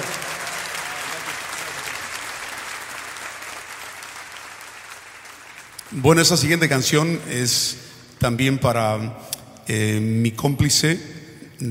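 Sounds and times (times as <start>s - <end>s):
concert audience applause: 0.0s - 6.4s
speech: 5.9s - 11.6s.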